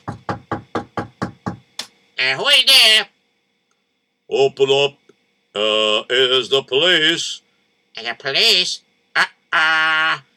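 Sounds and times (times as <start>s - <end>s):
knocking on a wooden door: 0.0s - 1.7s
speech: 2.2s - 3.1s, 4.3s - 7.4s, 8.0s - 10.3s.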